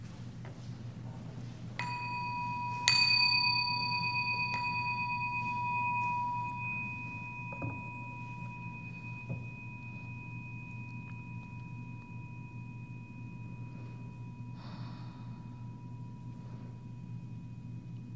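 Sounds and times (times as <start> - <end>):
low steady hum: 0.0 - 18.1
meditation bell chiming at a guided meditation: 1.8 - 18.1.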